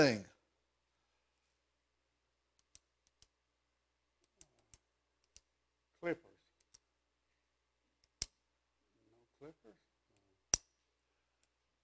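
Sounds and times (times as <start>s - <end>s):
speech: 0.0s - 0.3s, 6.0s - 6.3s
ballpoint pen clicking: 2.6s - 3.4s, 4.2s - 5.5s, 6.6s - 6.8s, 8.0s - 8.4s.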